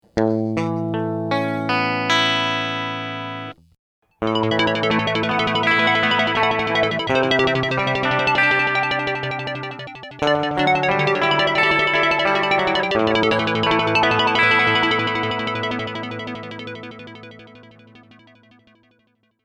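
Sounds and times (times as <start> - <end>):
clean guitar: 0.1 - 18.3
arpeggiated synth: 4.2 - 18.2.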